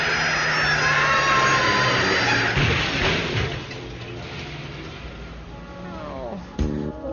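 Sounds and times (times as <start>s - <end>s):
garbage truck engine roaring and grinding: 0.0s - 7.1s
rising whining tones: 0.0s - 7.1s.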